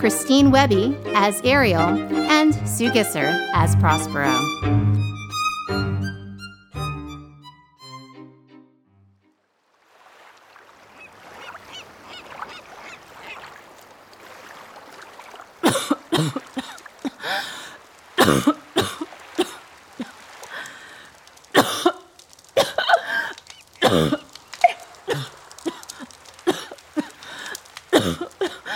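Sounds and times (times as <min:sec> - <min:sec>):
speech: 0:00.0 - 0:05.0
harsh violent coughing: 0:15.6 - 0:17.3, 0:18.2 - 0:19.6, 0:21.5 - 0:27.2, 0:27.9 - 0:28.6.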